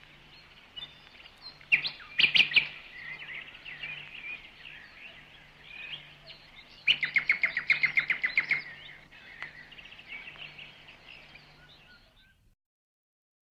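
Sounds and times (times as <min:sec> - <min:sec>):
bird twittering: 0:00.3 - 0:12.4.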